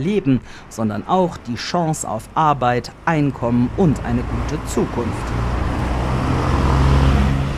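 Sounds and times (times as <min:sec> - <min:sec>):
speech: 0:00.0 - 0:05.6
dense rush-hour road traffic with cars and minibuses in Nairobi Kenya: 0:00.0 - 0:07.5
constant low engine drone of cars and minibuses: 0:03.3 - 0:07.5.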